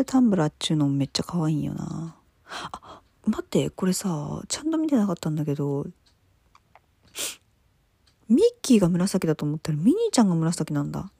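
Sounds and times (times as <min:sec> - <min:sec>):
speech: 0:00.0 - 0:06.0, 0:08.3 - 0:11.1
person sneezing: 0:07.1 - 0:07.4.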